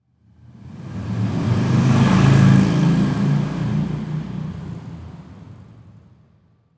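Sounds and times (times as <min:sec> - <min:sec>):
motorcycle driving by: 0:01.1 - 0:04.5.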